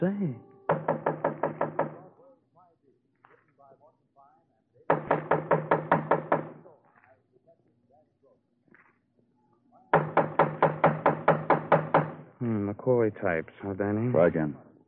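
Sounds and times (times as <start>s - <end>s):
speech: 0.0s - 0.5s, 13.2s - 14.7s
rapid loud knocking on a door: 0.7s - 2.1s, 4.9s - 6.7s, 9.9s - 12.3s.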